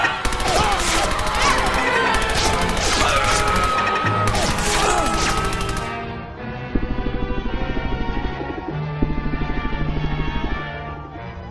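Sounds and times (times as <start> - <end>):
video game gunfire from turrets dropping out of the ceiling: 0.1 - 6.1, 6.7 - 10.9.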